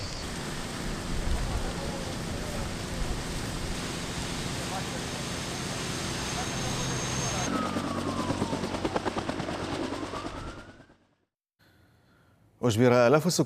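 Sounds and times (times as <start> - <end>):
firefighting aircraft roaring overhead: 0.2 - 10.8
whine: 0.2 - 10.8
speech: 12.7 - 13.4.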